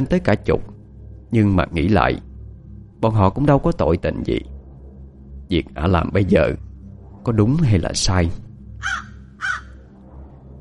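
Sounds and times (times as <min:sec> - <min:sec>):
speech: 0:00.0 - 0:00.7, 0:01.3 - 0:02.3, 0:03.0 - 0:04.5, 0:05.5 - 0:06.6, 0:07.2 - 0:09.6
faint low hum: 0:00.0 - 0:10.5
crow cawing at night: 0:08.8 - 0:09.8.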